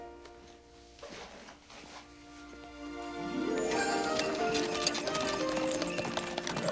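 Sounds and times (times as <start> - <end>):
horse hooves clip-clopping as horse is pulled to a stop: 2.8 - 6.7.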